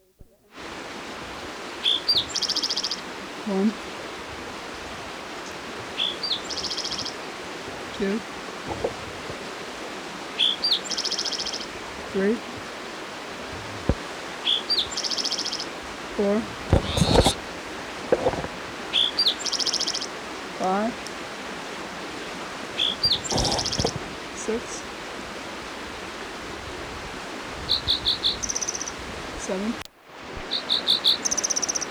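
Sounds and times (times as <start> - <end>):
flowing creek water: 0.3 - 31.8
spotted towhee singing near a creek: 1.8 - 12.9, 13.8 - 24.9, 27.6 - 29.8, 30.4 - 31.8
speech: 3.5 - 3.9, 8.0 - 8.3, 12.2 - 12.5.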